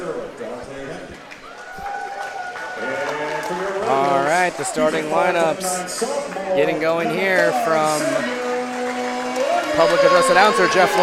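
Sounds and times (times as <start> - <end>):
arena crowd murmuring before a basketball game: 2.2 - 11.0
speech: 4.6 - 8.4, 9.8 - 11.0
louder calls from the crowd: 7.4 - 11.0.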